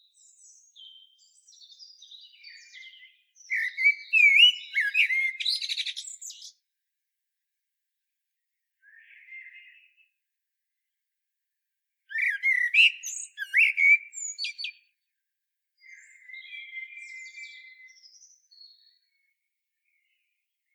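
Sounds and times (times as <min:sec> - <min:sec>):
Common blackbird Turdus merula song: 0:00.0 - 0:06.7, 0:08.4 - 0:10.2, 0:12.1 - 0:15.2, 0:15.8 - 0:20.7.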